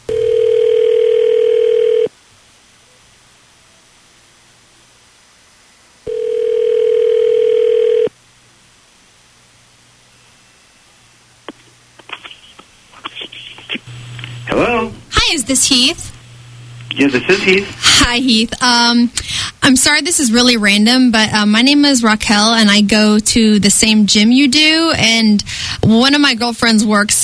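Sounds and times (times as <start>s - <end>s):
telephone ringback tones as a call is placed: 0.1s - 2.1s, 6.1s - 8.1s
faint clicks and crackles on the telephone line: 11.5s - 14.4s
speech: 15.5s - 16.1s, 17.0s - 27.2s.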